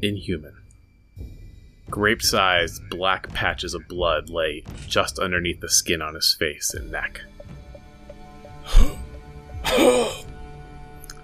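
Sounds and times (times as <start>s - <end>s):
speech: 0.0s - 0.6s, 1.9s - 7.3s, 9.6s - 10.3s
short wet gurgling bloody cough: 8.7s - 10.3s.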